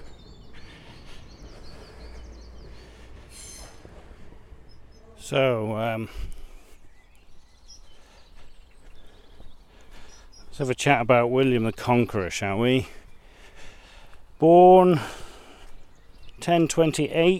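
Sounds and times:
train wheels squealing: 0.0s - 5.2s
train rumbling along the rails: 0.0s - 5.3s
birds chirping in a morning chorus near the seafront: 0.0s - 17.3s
speech: 5.3s - 6.4s, 10.6s - 13.0s, 14.4s - 15.2s, 16.4s - 17.3s.

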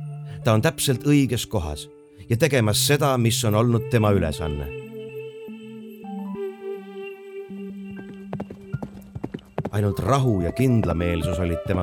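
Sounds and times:
speech: 0.4s - 4.9s, 9.7s - 11.8s
horse hooves galloping across a field: 8.0s - 11.8s.

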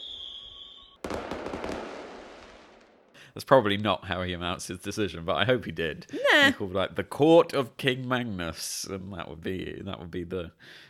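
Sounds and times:
firework whistling: 0.0s - 2.6s
firework bursting with a sharp bang: 0.0s - 3.1s
speech: 3.4s - 10.8s.

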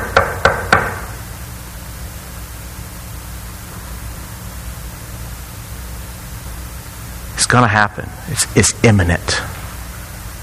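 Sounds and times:
knocking on a door: 0.0s - 1.1s
speech: 7.5s - 9.6s.

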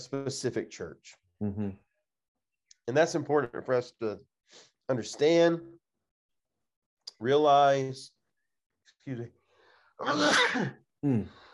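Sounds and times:
speech: 0.0s - 1.9s, 2.9s - 5.8s, 7.2s - 8.2s, 9.0s - 9.4s, 10.0s - 11.4s
sneeze: 10.0s - 10.8s.

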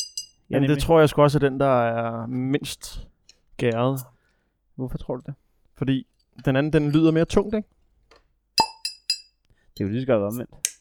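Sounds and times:
glasses clinking in a toast backstage at a venue: 0.0s - 0.5s, 8.6s - 9.3s
speech: 0.5s - 4.1s, 4.8s - 7.8s, 9.8s - 10.6s.

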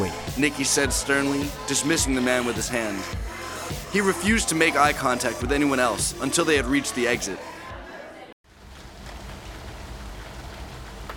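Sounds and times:
speech: 0.0s - 7.6s
heavy pouring rain: 8.5s - 11.1s.

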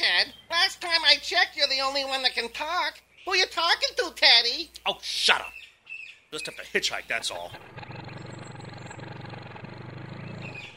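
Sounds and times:
speech: 1.3s - 5.6s, 6.3s - 8.0s
tow truck engine rumbling as it pulls up: 7.2s - 10.7s.

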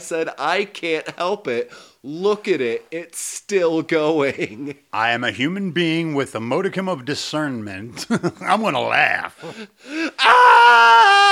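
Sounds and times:
speech: 0.0s - 11.3s
child wailing scream: 10.2s - 11.3s.

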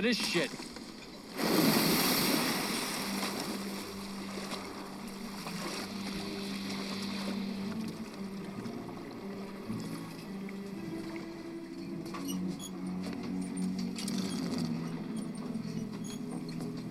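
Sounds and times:
speech: 0.0s - 0.7s
surf noise: 0.0s - 11.6s
water splashing: 0.0s - 11.6s
boat engine droning on water: 0.0s - 16.9s
wind: 0.0s - 16.9s.

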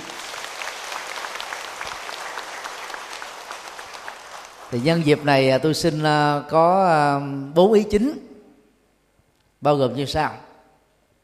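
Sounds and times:
applause from an audience at a tribute ceremony for organ and body donors: 0.0s - 5.2s
speech: 4.7s - 8.3s, 9.6s - 10.5s.

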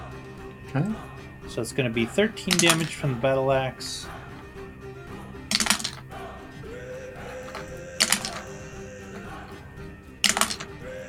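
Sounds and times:
speech: 0.7s - 4.2s
handful of dice clattering across a hard table in a tabletop game: 2.5s - 3.0s, 5.5s - 6.0s, 7.4s - 8.5s, 10.2s - 10.7s.

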